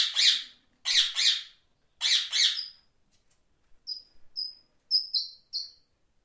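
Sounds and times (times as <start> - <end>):
parrot harsh squawks: 0.0 - 2.8.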